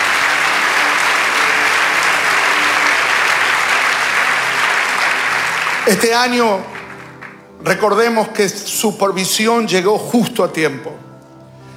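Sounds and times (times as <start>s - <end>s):
audience applause in a church service: 0.0s - 8.4s
speech: 5.9s - 6.7s, 7.6s - 11.1s.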